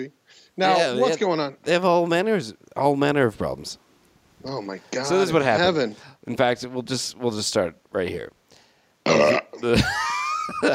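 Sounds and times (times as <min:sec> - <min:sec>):
speech: 0:00.0 - 0:03.8, 0:04.4 - 0:08.4, 0:09.0 - 0:10.7
person burping: 0:09.0 - 0:09.7.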